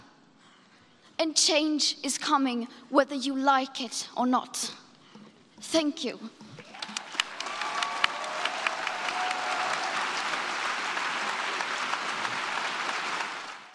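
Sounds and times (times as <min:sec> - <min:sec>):
speech: 0:01.2 - 0:04.8, 0:05.6 - 0:06.5
sizable crowd applauding after a speech: 0:06.6 - 0:13.7.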